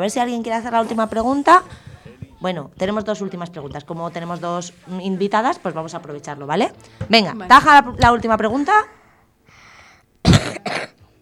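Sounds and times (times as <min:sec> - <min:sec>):
speech: 0:00.0 - 0:09.0
person coughing: 0:10.2 - 0:11.0.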